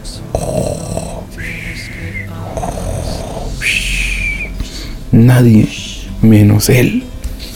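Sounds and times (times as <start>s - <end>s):
exaggerated monster-like snoring: 0.3s - 3.8s
high whistling exhale: 1.4s - 5.1s
speech: 5.2s - 7.1s.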